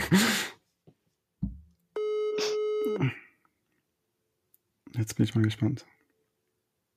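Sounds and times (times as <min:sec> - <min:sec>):
speech: 0:00.1 - 0:00.4, 0:05.0 - 0:06.0
soft thump: 0:01.4 - 0:01.7
telephone ringing tone over the line before voicemail: 0:02.0 - 0:03.0.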